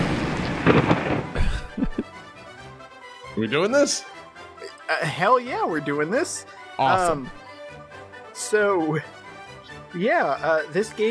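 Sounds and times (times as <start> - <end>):
thunder sound effect announcing a game's lightning round: 0.0 - 1.6
deep booming thuds: 0.0 - 2.1
speech: 3.4 - 4.1, 4.9 - 7.4, 8.4 - 9.2, 9.9 - 11.1.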